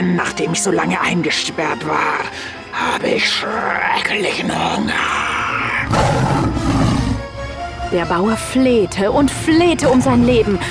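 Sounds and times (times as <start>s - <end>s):
speech: 0.2s - 5.3s, 7.9s - 10.6s
tiger roaring: 5.1s - 7.3s.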